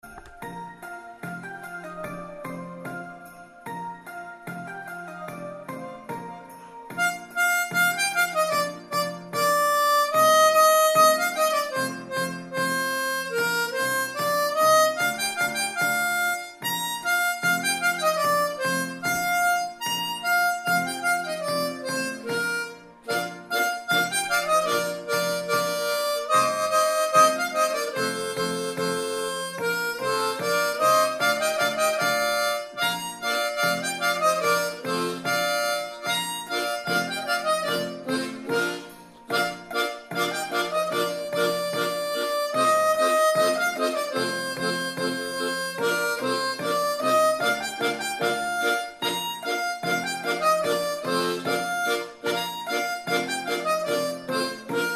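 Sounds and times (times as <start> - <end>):
harmonica melody in B flat: 0.0 - 54.9.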